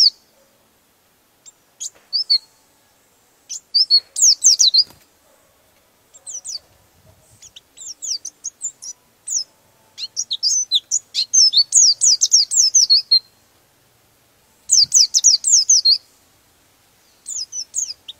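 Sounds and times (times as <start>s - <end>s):
white-eye singing high twittering notes: 1.4s - 2.6s, 3.5s - 5.0s, 6.1s - 13.3s, 14.7s - 16.1s, 17.0s - 18.1s.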